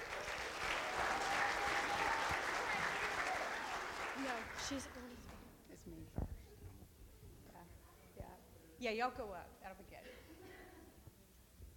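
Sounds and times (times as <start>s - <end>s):
audience applause for a group coming up to present: 0.0s - 5.1s
faint crowd murmur: 1.8s - 11.7s
speech: 4.7s - 5.0s, 8.8s - 10.3s.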